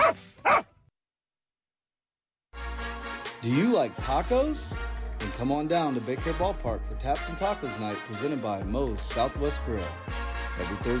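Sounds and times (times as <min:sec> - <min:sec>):
dog barking: 0:00.0 - 0:00.7
speech: 0:03.4 - 0:10.9.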